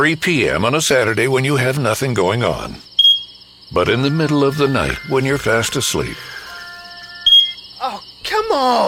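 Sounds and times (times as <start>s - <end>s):
speech: 0.0s - 2.9s, 3.7s - 6.4s, 7.9s - 8.8s
smoke detector chirping from a dying battery: 2.8s - 8.2s.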